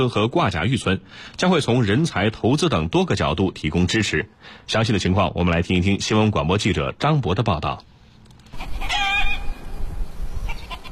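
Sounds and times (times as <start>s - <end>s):
speech: 0.0s - 7.9s
hens clucking in a distant farmyard in a mountain village: 8.5s - 9.5s, 10.5s - 10.9s.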